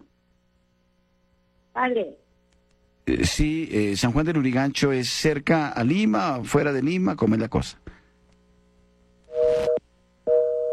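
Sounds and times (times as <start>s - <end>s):
speech: 1.8s - 2.2s, 3.1s - 8.0s
telephone busy tone after a caller's line drops: 9.3s - 10.7s.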